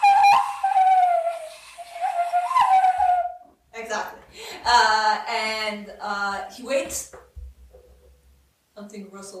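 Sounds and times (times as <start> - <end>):
person whistling in imitation of a bird call: 0.0 - 3.4
speech: 4.7 - 7.2, 8.8 - 9.3.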